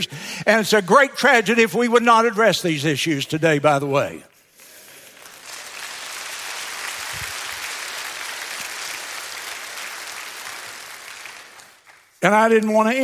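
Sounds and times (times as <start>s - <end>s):
speech: 0.0s - 4.3s, 12.2s - 13.0s
crowd clapping: 4.6s - 12.7s.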